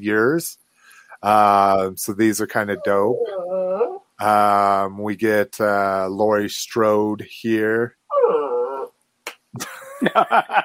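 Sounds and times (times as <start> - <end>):
speech: 0.0 - 0.6, 1.2 - 3.6, 4.2 - 8.3, 9.6 - 10.6
dog whimpering: 2.6 - 4.1, 8.1 - 8.9
dog yipping: 2.8 - 4.0, 8.1 - 8.9
laughter: 9.6 - 10.6.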